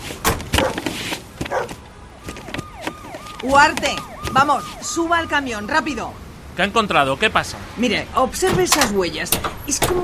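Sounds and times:
dogs barking while inspecting a truck: 0.5 - 0.8, 1.4 - 1.8
speech: 3.4 - 10.0.

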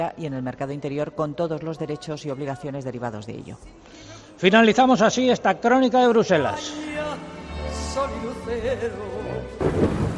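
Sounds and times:
speech: 0.0 - 7.0, 8.0 - 10.1
low rolling thunder rumbles: 9.6 - 10.1.

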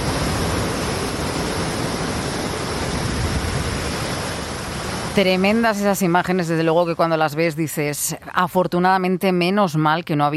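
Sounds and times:
floodwater rushing through streets: 0.0 - 7.6
speech: 5.2 - 10.3.

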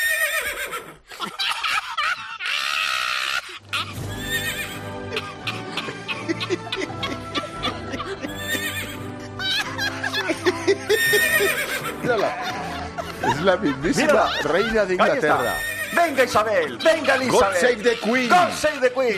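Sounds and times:
loud shrill horse whinny: 0.0 - 1.0, 2.8 - 4.9, 8.3 - 9.1, 11.0 - 11.9, 15.3 - 17.6
laughter: 1.0 - 19.1
upbeat music with a steady beat: 3.7 - 19.1
speech: 13.4 - 19.1.

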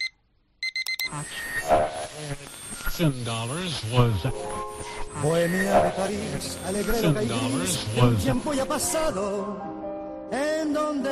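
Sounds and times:
alarm clock beeping: 0.0 - 8.7
speech: 1.1 - 11.0
loud music with a singing voice: 3.0 - 11.0.

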